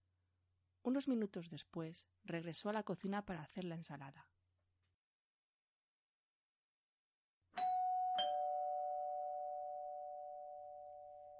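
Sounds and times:
speech: 0.8 - 4.3
doorbell two-note ding-dong chime: 7.6 - 11.3.

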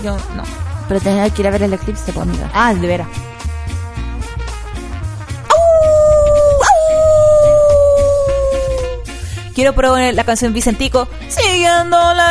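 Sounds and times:
speech: 0.0 - 3.4, 9.6 - 12.2
steady rhythmic music: 4.4 - 9.4
dog howling: 5.5 - 9.0.

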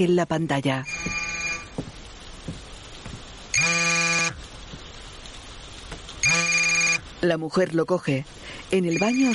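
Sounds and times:
speech: 0.0 - 1.2, 7.2 - 9.3
mobile phone ringtone on the floor beside a bed: 0.8 - 1.7, 6.2 - 7.0, 8.9 - 9.3.

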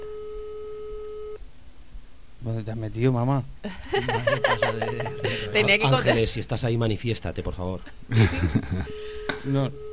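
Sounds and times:
telephone call tone on a landline: 0.0 - 1.4, 8.9 - 9.9
speech: 2.4 - 9.9
laughter: 3.7 - 6.3, 8.1 - 9.0.

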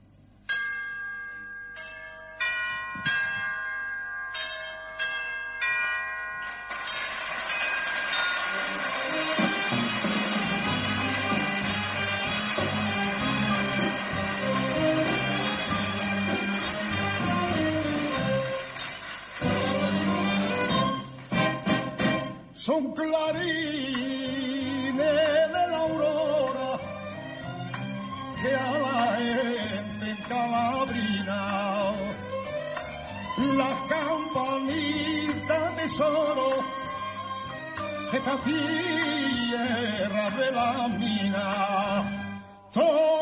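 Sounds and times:
resonant bell strikes: 0.4 - 9.4
mournful Spanish-style song with rich sustained instruments: 7.6 - 43.2.

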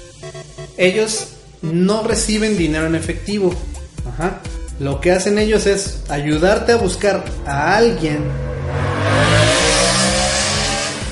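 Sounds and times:
speech: 0.2 - 8.5
motorcycle engine roaring past outside open window: 7.2 - 11.1.

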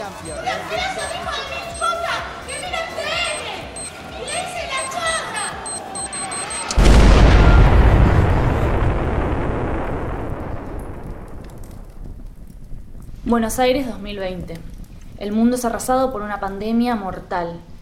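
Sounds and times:
crowd outdoors chattering at a pot-banging street protest: 0.0 - 6.8
speech: 0.2 - 1.7, 13.3 - 17.7
loud roaring blast of noise: 6.7 - 13.2.

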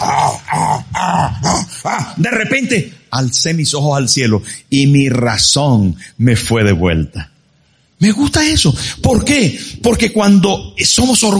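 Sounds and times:
werewolf growl sound effect: 0.0 - 2.2
speech: 2.2 - 7.3, 8.0 - 11.3.

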